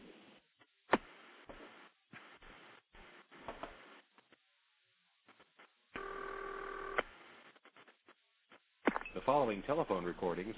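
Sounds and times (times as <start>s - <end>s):
telephone tone: 6.0s - 7.0s
speech: 9.2s - 10.5s.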